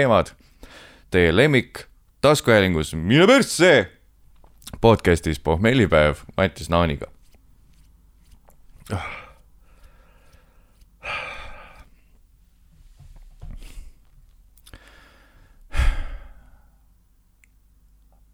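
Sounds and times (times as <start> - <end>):
speech: 0.0 - 0.5, 1.1 - 4.0, 4.7 - 7.2, 8.9 - 9.2
deliberate heavy breathing into a microphone: 8.9 - 12.2, 14.7 - 16.9.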